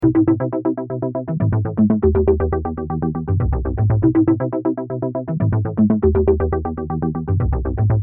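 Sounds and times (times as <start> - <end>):
synth in E minor: 0.0 - 8.0.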